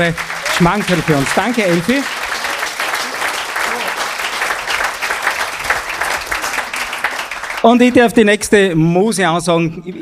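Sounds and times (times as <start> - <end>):
speech: 0.0 - 2.2, 7.6 - 9.9
audience applause: 0.0 - 8.0.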